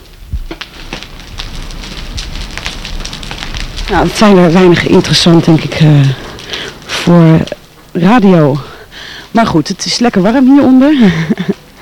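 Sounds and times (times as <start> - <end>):
large fire of a burning barricade crackling and roaring: 0.0 - 11.8
speech: 3.9 - 6.2, 7.1 - 8.7, 9.3 - 11.6.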